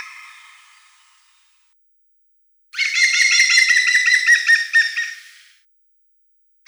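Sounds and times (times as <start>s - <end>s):
European green woodpecker loud ringing laughing notes: 2.8s - 5.5s.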